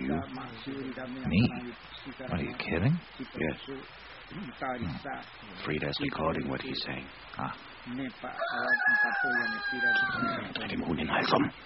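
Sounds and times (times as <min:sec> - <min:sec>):
speech: 0:00.2 - 0:11.6
rooster crowing: 0:08.2 - 0:10.6.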